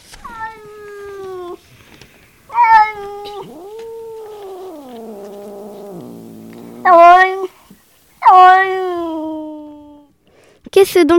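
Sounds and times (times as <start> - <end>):
cat meowing with plaintive cries and a mournful yowl: 0.1 - 1.6, 2.4 - 10.1
speech: 10.8 - 11.1.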